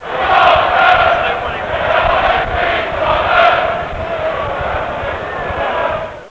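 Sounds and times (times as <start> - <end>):
soccer crowd chanting: 0.0 - 6.2.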